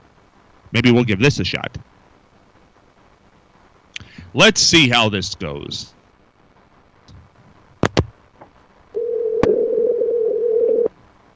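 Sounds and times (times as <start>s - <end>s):
speech: 0.7s - 1.9s, 4.4s - 6.0s
phone line clicks during an outgoing call: 9.0s - 10.9s.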